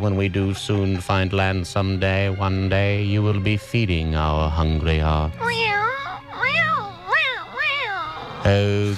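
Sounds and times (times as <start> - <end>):
speech: 0.0 - 5.8, 8.4 - 8.9
cat meowing and yowling: 5.4 - 8.4.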